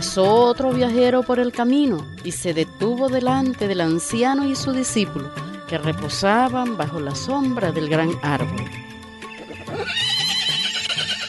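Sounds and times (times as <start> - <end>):
speech: 0.1 - 9.0
horse neighing: 9.3 - 11.2.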